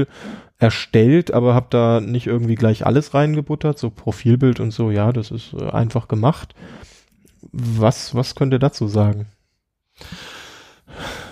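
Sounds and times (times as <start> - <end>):
heavy breathing: 0.0 - 0.6, 6.5 - 7.2, 9.9 - 11.3
speech: 0.0 - 9.4, 10.0 - 11.1.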